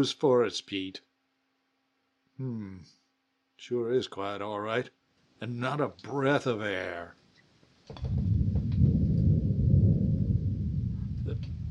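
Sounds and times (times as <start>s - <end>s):
speech: 0.0s - 1.1s, 2.4s - 3.0s, 3.6s - 7.2s, 7.9s - 8.3s
faint crackles: 7.8s - 11.6s
distant thunder rumbling: 8.0s - 11.6s.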